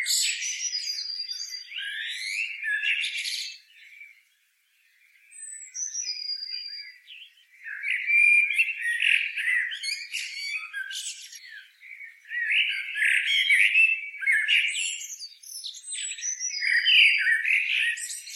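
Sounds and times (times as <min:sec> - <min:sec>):
Common blackbird Turdus merula long warbled squeaky twitter: 0:00.0 - 0:03.7, 0:05.3 - 0:18.3.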